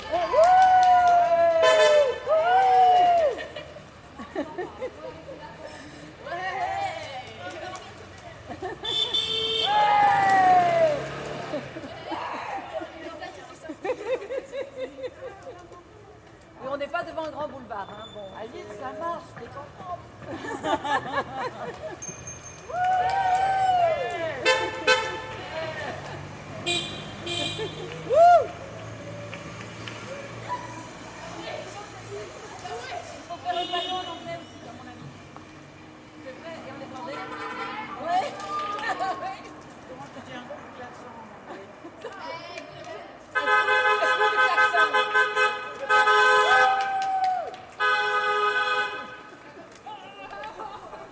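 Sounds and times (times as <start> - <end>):
street traffic noise: 0.0 - 51.1
laughter: 3.1 - 6.0, 8.3 - 9.0, 10.4 - 15.8, 20.2 - 22.1, 24.1 - 28.2, 38.0 - 40.4, 49.2 - 51.1
car horns honking in morning street traffic: 8.8 - 9.8, 24.4 - 25.4, 26.6 - 27.9, 43.4 - 46.7, 47.8 - 49.3.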